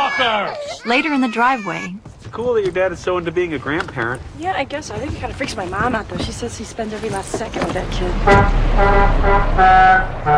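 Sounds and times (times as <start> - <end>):
speech: 0.1 - 10.3
large motor coach engine rumble: 2.1 - 10.3
motor coach horn blasts: 8.1 - 10.3.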